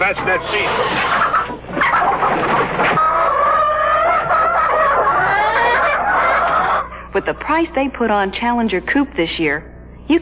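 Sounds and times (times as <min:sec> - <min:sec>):
speech: 0:00.0 - 0:01.4, 0:07.1 - 0:10.1
several chickens clucking and squawking: 0:00.0 - 0:07.2.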